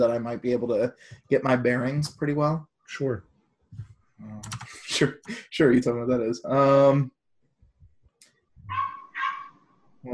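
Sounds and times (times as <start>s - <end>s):
speech: 0.0s - 7.2s
dog barking: 8.7s - 9.6s.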